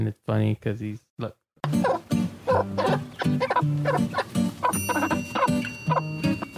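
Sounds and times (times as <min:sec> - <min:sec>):
speech: 0:00.0 - 0:01.9, 0:02.6 - 0:05.8
mother hen clucking to call chicks to food: 0:01.6 - 0:06.5
chicks peeping: 0:01.8 - 0:06.5.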